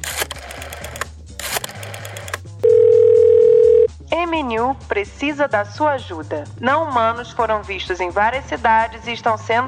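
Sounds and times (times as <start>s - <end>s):
telephone dial tone as a call is placed: 0.0s - 3.9s
speech: 4.8s - 9.6s.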